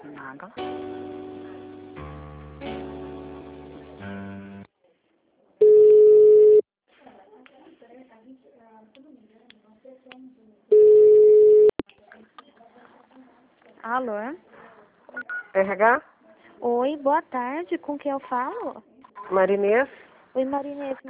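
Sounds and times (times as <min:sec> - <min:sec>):
speech: 0:00.2 - 0:01.1, 0:14.0 - 0:14.4, 0:15.6 - 0:21.0
telephone ringing tones during a call transfer: 0:05.6 - 0:06.6, 0:10.7 - 0:11.8.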